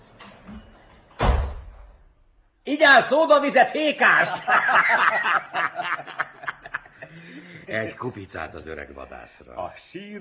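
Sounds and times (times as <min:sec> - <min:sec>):
door slamming shut: 0:00.5 - 0:02.2
speech: 0:02.7 - 0:06.1, 0:07.7 - 0:10.2
laughter: 0:03.9 - 0:08.0.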